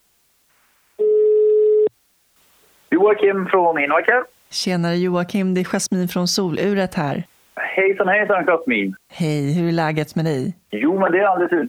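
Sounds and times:
outgoing phone call ringback tone: 1.0 - 1.9
speech: 2.9 - 11.6.

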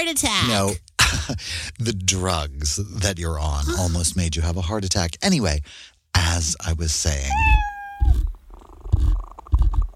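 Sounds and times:
speech: 0.0 - 7.7
cat purring: 7.3 - 9.9.

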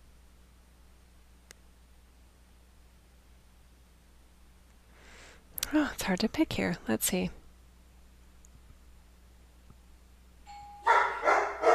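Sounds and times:
speech: 5.8 - 7.4
doorbell chiming with a single sustained tone: 10.5 - 11.3
dog barking loudly: 10.8 - 11.7.

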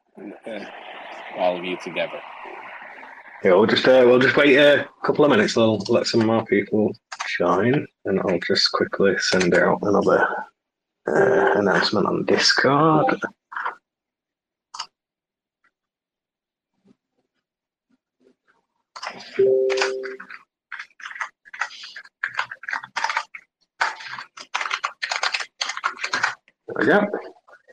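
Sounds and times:
speech: 0.2 - 2.4, 3.4 - 10.5, 11.1 - 13.4, 19.4 - 20.2, 26.8 - 27.3
brief electronic tone: 19.4 - 20.2
clicky keystrokes on a mechanical computer keyboard: 19.7 - 26.4.

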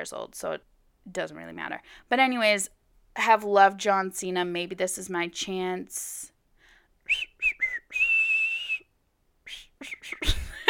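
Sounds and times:
speech: 0.0 - 6.3, 7.1 - 7.3
person whistling a theme song tune: 7.1 - 8.9, 9.5 - 10.4.

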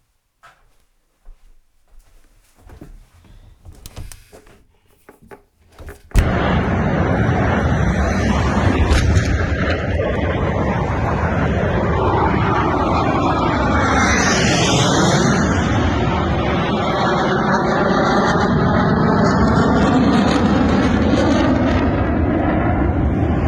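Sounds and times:
loud airplane roaring overhead: 6.7 - 23.4.

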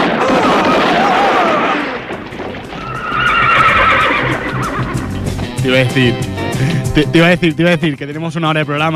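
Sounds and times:
mule braying: 0.2 - 5.7
speech: 5.7 - 8.9.

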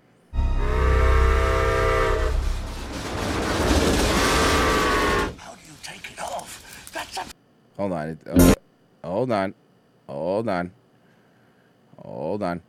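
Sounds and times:
toy train whistle: 0.4 - 2.5
toy trains rattling and rumbling: 2.4 - 7.2
speech: 7.8 - 8.6, 9.2 - 10.8, 12.0 - 12.6.

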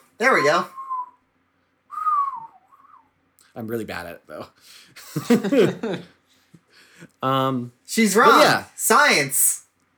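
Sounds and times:
speech: 0.2 - 0.8, 3.6 - 6.2, 7.0 - 9.6
person whistling through lips: 0.4 - 1.2, 1.9 - 3.1
laughter: 5.0 - 6.2.

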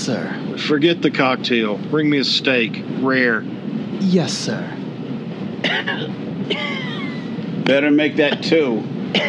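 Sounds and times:
speech: 0.0 - 4.8, 5.6 - 6.8, 7.7 - 9.2
low rumble: 0.0 - 9.2
man coughing harshly in a short fit: 5.6 - 7.0, 8.3 - 9.2.

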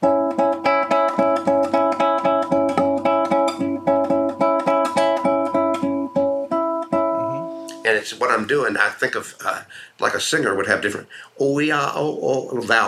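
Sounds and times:
guitar notes plucked with fingertip flesh and nail: 0.0 - 7.9
speech: 8.0 - 12.8.

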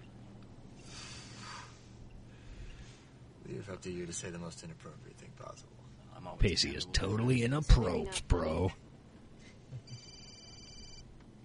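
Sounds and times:
speech: 3.5 - 8.8
telephone ringing: 9.8 - 11.1.

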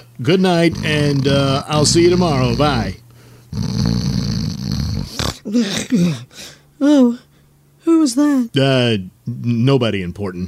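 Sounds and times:
speech: 0.2 - 4.4, 5.5 - 10.4
loud snoring: 0.6 - 5.5.

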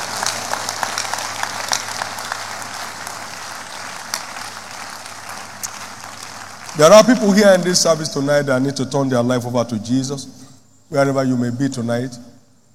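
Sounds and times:
large crowd clapping at a church service: 0.0 - 8.1
speech: 6.8 - 12.3.

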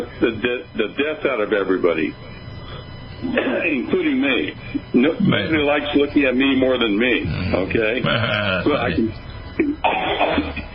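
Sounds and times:
speech: 0.0 - 2.3, 3.2 - 10.6
woman coughing: 9.6 - 10.6.

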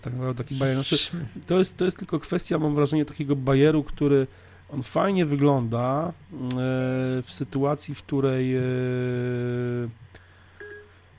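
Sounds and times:
speech: 0.0 - 10.0
long buzzy electronic Siri activation tone on a phone: 0.5 - 1.3
short soft two-tone phone beep: 10.6 - 10.9.

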